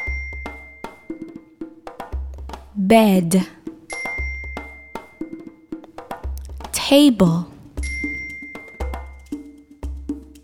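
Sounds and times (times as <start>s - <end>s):
bell ringing: 0.0s - 1.2s, 3.9s - 5.4s, 7.8s - 9.3s
speech: 2.8s - 3.6s, 6.9s - 7.5s.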